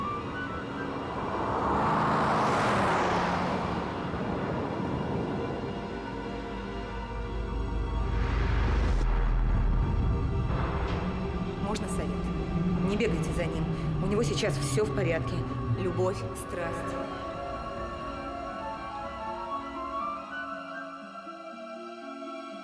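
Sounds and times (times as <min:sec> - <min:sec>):
road rumble and whoosh: 0:00.0 - 0:18.0
car driving through a city: 0:00.0 - 0:20.4
speech: 0:14.4 - 0:17.0.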